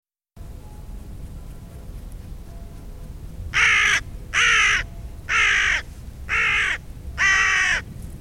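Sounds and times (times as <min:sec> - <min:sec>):
faint low rumble: 0:00.4 - 0:07.2, 0:07.8 - 0:08.2
carrion crow Corvus corone cawing: 0:03.6 - 0:07.9.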